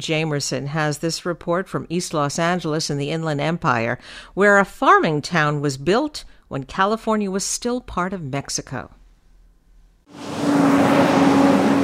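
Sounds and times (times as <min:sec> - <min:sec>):
speech: 0:00.0 - 0:09.0
delivery trucks rumbling past on an industrial street in Riverside California: 0:10.1 - 0:11.8.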